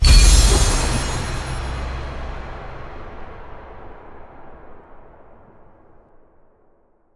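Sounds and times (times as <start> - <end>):
super mega big win hit sound effect: 0.0 - 2.4.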